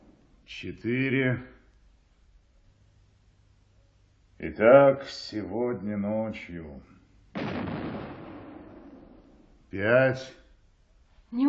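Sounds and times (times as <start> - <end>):
speech: 0.5 - 1.6, 4.4 - 6.9, 9.7 - 10.4
six-inch artillery battery firing a salute at night: 7.3 - 9.5.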